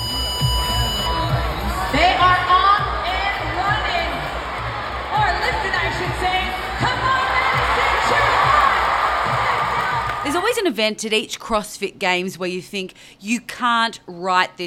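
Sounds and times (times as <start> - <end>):
large indoor arena crowd roaring and cheering: 0.0 - 10.6
speech: 10.6 - 14.6.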